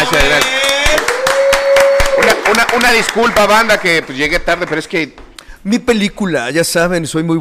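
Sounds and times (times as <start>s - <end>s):
small group clapping rhythmically: 0.0s - 5.4s
speech: 2.9s - 7.3s.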